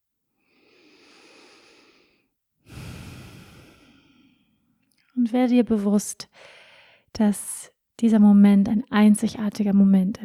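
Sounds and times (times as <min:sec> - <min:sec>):
slow deliberate breathing in and out: 0:00.4 - 0:04.7, 0:06.3 - 0:07.1
speech: 0:05.2 - 0:10.2.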